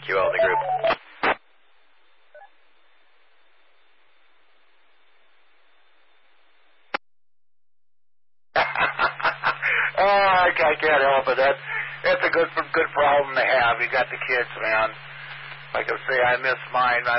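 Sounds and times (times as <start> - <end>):
faint radio-like hiss: 0.0 - 7.0, 8.6 - 17.1
phone ringing with incoming call: 0.2 - 0.9
laughter: 8.6 - 10.6
speech: 12.3 - 15.1, 15.7 - 17.1.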